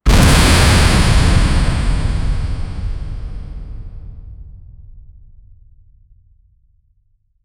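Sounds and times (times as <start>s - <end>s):
powerful ground impact: 0.0s - 4.8s.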